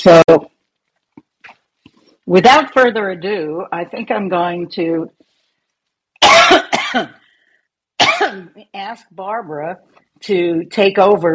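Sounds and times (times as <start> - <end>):
speech: 0.0 - 0.5, 2.3 - 5.2, 6.9 - 7.2, 8.2 - 11.3
adult man coughing: 6.2 - 7.1, 8.0 - 8.4.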